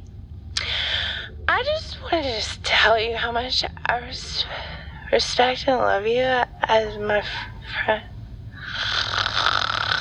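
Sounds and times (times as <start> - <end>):
speech: 1.6 - 8.1
woman snoring in her sleep: 8.6 - 9.9.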